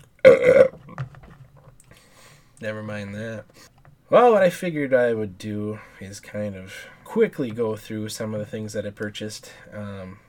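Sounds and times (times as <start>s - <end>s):
person burping: 0.0s - 1.0s
quiet breathing: 1.8s - 2.6s, 5.6s - 7.2s, 9.4s - 10.2s
speech: 2.6s - 10.2s.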